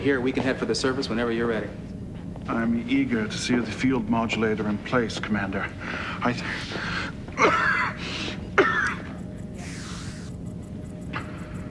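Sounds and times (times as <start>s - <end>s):
speech: 0.0s - 8.1s
low steady hum: 0.0s - 11.6s
alien mechanical breathing device wheezing: 9.6s - 10.4s.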